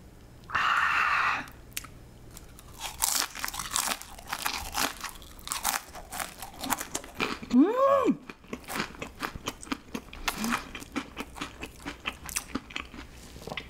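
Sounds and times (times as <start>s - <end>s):
crunching on crispy waffle-cut fries dipped in mustard and ketchup: 1.7s - 7.6s, 8.2s - 13.6s
eater giving a short appreciative hum: 7.5s - 8.2s.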